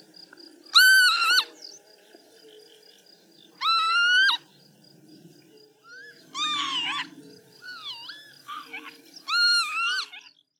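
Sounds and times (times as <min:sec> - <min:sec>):
northern lapwing calling: 0:00.7 - 0:01.6, 0:03.6 - 0:04.5, 0:05.8 - 0:10.4.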